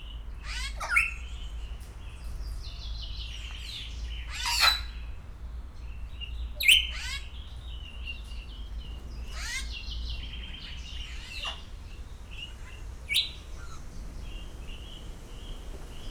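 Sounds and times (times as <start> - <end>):
background hum: 0.0 - 16.1
captive grey parrot squawking at a zoo in Szeged: 0.4 - 1.2, 6.6 - 7.3, 9.3 - 9.7, 11.0 - 11.7.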